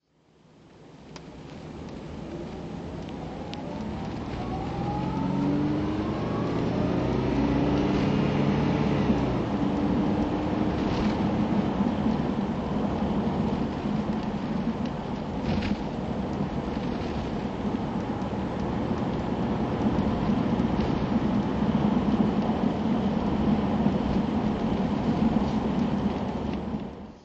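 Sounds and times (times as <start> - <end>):
Jaguar XJ12 engine driving: 1.2 - 27.1.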